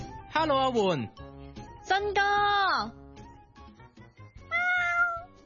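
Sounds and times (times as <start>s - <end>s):
speech: 0.4s - 1.2s, 1.9s - 3.0s
cat meowing: 4.4s - 5.4s.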